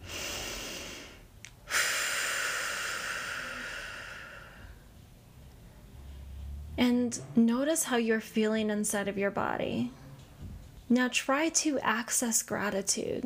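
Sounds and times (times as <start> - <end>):
deep breath taken during a guided gratitude exercise: 0.0 - 4.9
speech: 6.8 - 10.0, 10.9 - 13.2.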